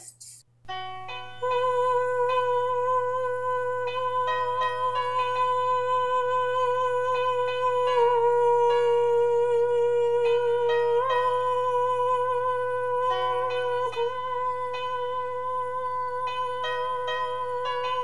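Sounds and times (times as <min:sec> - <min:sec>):
soprano singing: 0:00.7 - 0:18.0.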